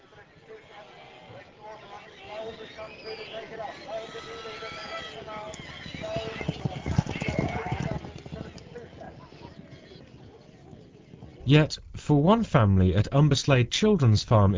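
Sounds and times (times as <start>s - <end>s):
shire horse hooves clip-clopping at a children's farm in the West Midlands: 0.0s - 11.5s
faint voices murmuring: 0.0s - 14.5s
speech: 11.5s - 14.5s.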